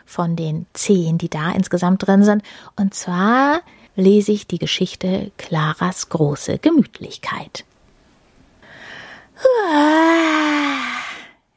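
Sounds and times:
speech: 0:00.1 - 0:07.7, 0:09.4 - 0:10.7
reader imitating a long bored yawn: 0:09.4 - 0:11.4.

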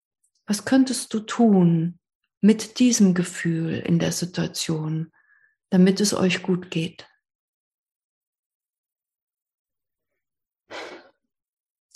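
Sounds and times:
speech: 0:00.5 - 0:07.1
faint breath: 0:05.1 - 0:05.6, 0:10.7 - 0:11.2
deep inhale: 0:10.7 - 0:11.2.

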